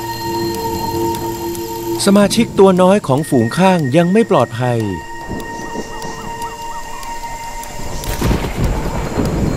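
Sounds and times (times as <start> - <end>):
rain-like hiss: 0.0 - 9.5
speech: 2.0 - 5.1
faint bird calls chirping: 5.2 - 8.0
low rolling thunder: 7.9 - 9.5.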